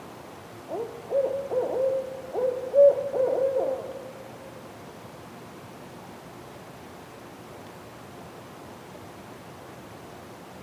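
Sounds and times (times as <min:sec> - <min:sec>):
owl hooting on a sustained even pitch: 0:00.7 - 0:04.2.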